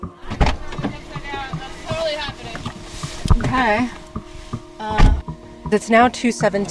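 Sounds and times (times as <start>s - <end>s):
faint whine: 0.0s - 5.2s
car door thudding shut: 0.2s - 5.2s
soft shuffling inside the vehicle: 0.2s - 5.2s
speech: 3.5s - 4.0s, 5.7s - 6.7s.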